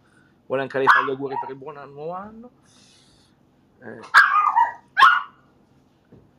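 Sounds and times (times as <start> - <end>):
speech: 0.5 - 3.0, 3.8 - 4.4
dog barking: 0.8 - 1.6, 4.0 - 5.4.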